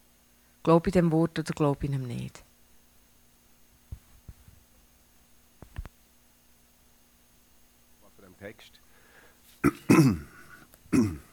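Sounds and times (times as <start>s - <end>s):
speech: 0.6s - 2.5s
rasping throat clearing: 9.6s - 11.3s.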